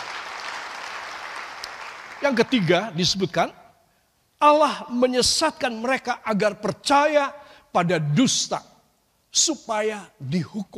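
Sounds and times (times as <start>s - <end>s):
audience applauding: 0.0s - 2.8s
speech: 2.2s - 3.6s, 4.4s - 8.7s, 9.3s - 10.7s.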